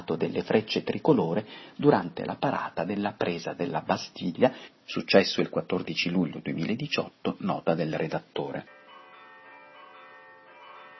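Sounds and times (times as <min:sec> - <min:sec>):
speech: 0:00.1 - 0:08.8
Notre Dame church bells ringing in Paris: 0:08.4 - 0:10.9.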